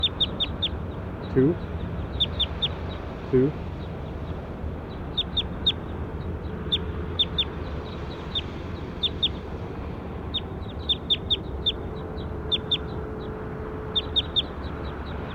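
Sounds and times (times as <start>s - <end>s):
bird chirping: 0.0s - 15.3s
speech: 1.3s - 1.8s, 3.3s - 3.6s.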